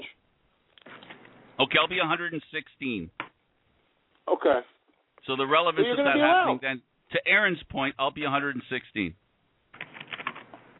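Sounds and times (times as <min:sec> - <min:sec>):
speech: 0:01.6 - 0:03.2, 0:04.3 - 0:09.2
computer keyboard typing: 0:09.8 - 0:10.6.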